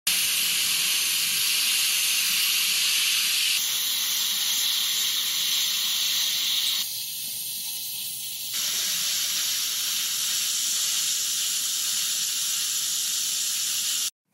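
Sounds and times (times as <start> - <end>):
dental drill: 0.1 - 14.2.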